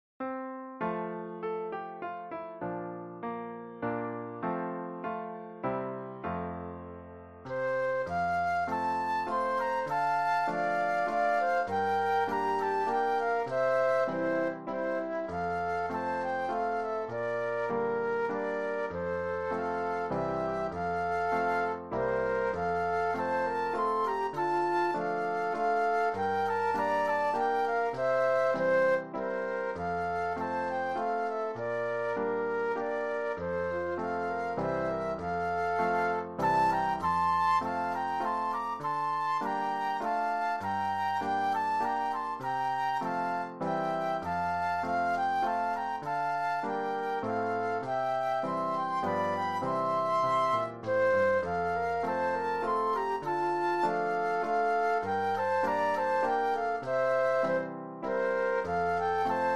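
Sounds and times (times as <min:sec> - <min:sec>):
piano: 0:00.2 - 0:59.5
flute duet: 0:00.8 - 0:59.5.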